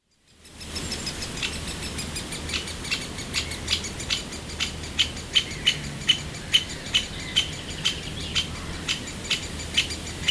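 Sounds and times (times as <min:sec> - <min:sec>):
bird alarm call of sharp clicking ticks: 0:00.0 - 0:10.2.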